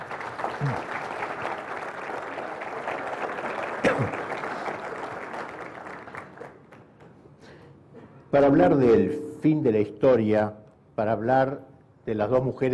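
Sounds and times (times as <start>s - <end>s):
audience applause at a Catholic lecture: 0.0s - 7.0s
speech: 0.6s - 1.0s, 8.3s - 12.7s.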